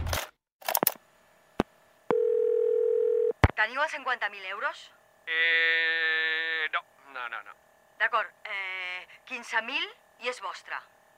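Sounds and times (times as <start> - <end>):
telephone dial tone: 2.1 - 3.3
speech: 3.6 - 10.9.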